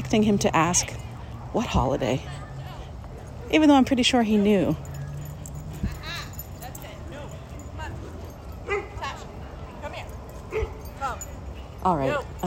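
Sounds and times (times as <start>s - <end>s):
steady murmur of noise: 0.0s - 12.4s
speech: 0.1s - 2.4s, 3.5s - 4.9s, 11.8s - 12.4s
dog barking in short yips and whimpering: 8.0s - 9.2s, 10.4s - 11.3s.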